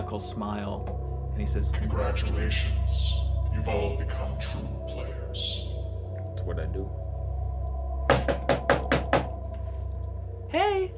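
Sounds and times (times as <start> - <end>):
low hum: 0.0 - 10.9
speech: 0.1 - 5.7, 6.4 - 7.0, 10.5 - 10.9
knocking on a door: 8.1 - 9.4.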